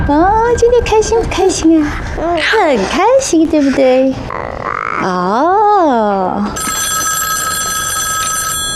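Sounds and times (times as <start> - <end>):
speech: 0.1 - 4.4, 5.0 - 6.7
telephone ringing with a bright electronic tone: 6.5 - 8.7.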